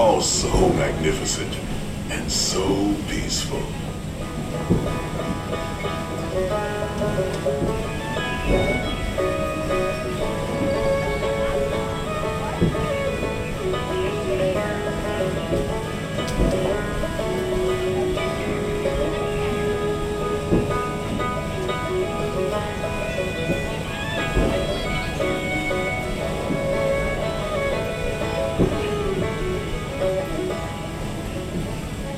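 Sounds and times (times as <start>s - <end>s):
churning water under a riverboat: 0.0s - 32.1s
faint crowd murmur aboard a riverboat: 0.0s - 32.1s
riverboat engine rumble with droning mechanical tones: 0.0s - 32.1s
speech: 0.1s - 3.9s.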